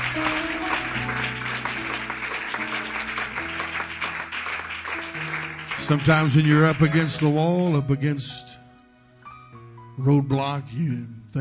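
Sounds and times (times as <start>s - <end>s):
audience clapping: 0.0s - 7.8s
sustained organ or keyboard chords: 0.0s - 11.4s
speech: 5.9s - 8.5s, 10.0s - 11.4s.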